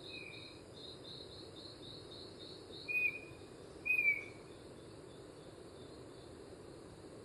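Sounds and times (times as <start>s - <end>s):
chestnut-backed antbird singing in Gandoca-Manzanillo, Costa Rica: 0.0s - 5.2s.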